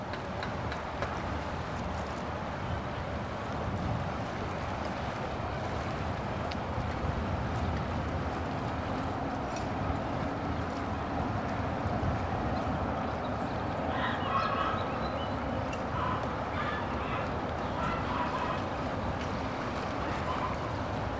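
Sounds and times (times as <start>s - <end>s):
low rumble of passing boats: 0.0s - 21.1s
steady rushing river water: 0.0s - 21.1s.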